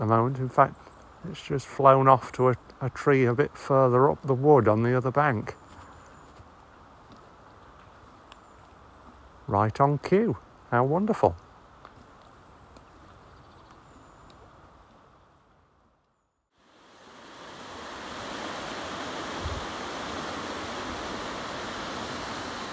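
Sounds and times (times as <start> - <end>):
speech: 0.0 - 5.6, 9.5 - 11.4
fast-flowing river water rushing: 16.9 - 22.7.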